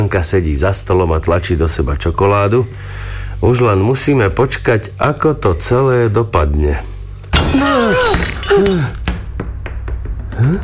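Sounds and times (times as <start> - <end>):
speech: 0.0 - 6.9, 7.6 - 9.0, 10.4 - 10.6
falling glass pieces clinking and tinkling: 7.3 - 9.2
window pane shattering from a football: 7.3 - 9.2.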